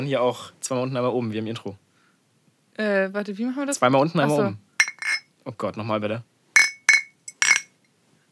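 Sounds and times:
speech: 0.0s - 1.8s, 2.8s - 4.6s, 5.4s - 6.3s
beer glasses clinking in a toast: 4.3s - 5.3s, 6.6s - 7.7s.

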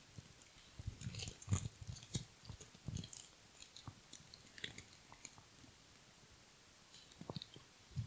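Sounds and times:
person chewing a chocolate snack: 0.6s - 5.4s.

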